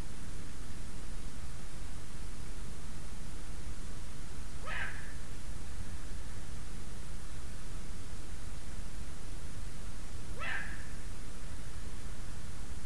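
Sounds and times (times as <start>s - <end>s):
steady broadband hiss: 0.0s - 12.8s
Eurasian eagle-owl Bubo bubo giving short harsh rising calls: 4.6s - 5.2s, 10.3s - 11.0s.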